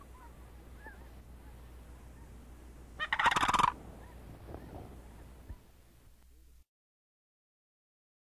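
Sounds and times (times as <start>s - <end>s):
faint low hum: 0.0s - 6.6s
sandhill crane rolling rattled call: 3.0s - 5.4s.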